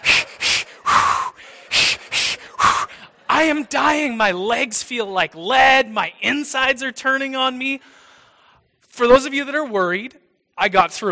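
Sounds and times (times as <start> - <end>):
heavy rhythmic breathing while running: 0.0 - 3.3, 7.8 - 8.8
speech: 3.4 - 8.0, 9.0 - 11.1.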